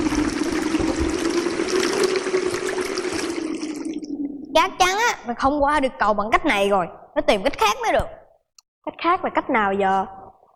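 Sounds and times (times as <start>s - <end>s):
water flowing in a stream: 0.0s - 4.6s
speech: 4.6s - 8.2s, 8.8s - 10.2s.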